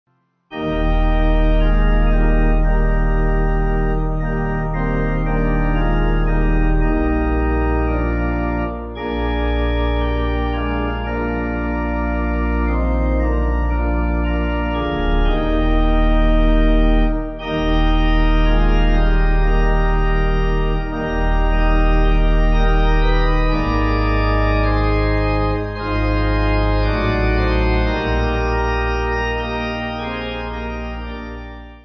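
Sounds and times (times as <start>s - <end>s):
pipe organ playing: 0.5s - 31.8s.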